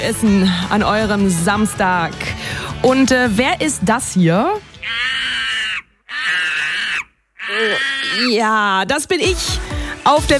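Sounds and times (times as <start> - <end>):
speech: 0.0 - 5.0, 7.5 - 10.3
monkey screeching: 4.8 - 8.5.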